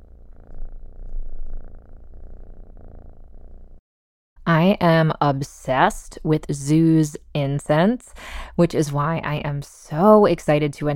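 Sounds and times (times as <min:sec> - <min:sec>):
cat purring: 0:00.0 - 0:03.8
speech: 0:04.6 - 0:10.9.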